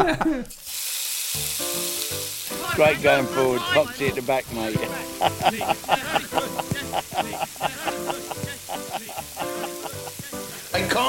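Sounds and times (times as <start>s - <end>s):
man laughing: 0.0s - 0.5s, 2.9s - 10.4s
speech: 0.0s - 0.6s, 1.3s - 1.9s, 2.7s - 6.2s, 7.2s - 8.4s
food sizzling in a frying pan: 0.4s - 11.0s.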